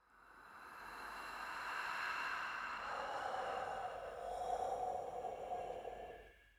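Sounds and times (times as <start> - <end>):
breathing: 0.1 - 6.5.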